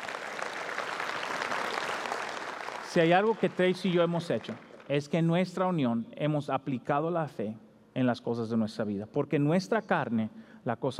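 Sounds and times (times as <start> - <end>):
audience applause: 0.0 - 4.9
speech: 2.9 - 10.9.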